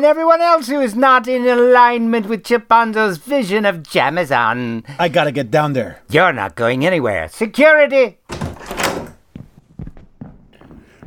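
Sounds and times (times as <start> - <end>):
speech: 0.0 - 8.8
office door opening: 8.3 - 9.3.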